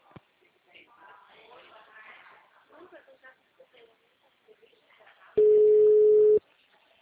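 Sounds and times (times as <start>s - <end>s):
faint talk on the phone line: 0.0s - 7.0s
telephone beep after a dropped call: 5.4s - 6.4s.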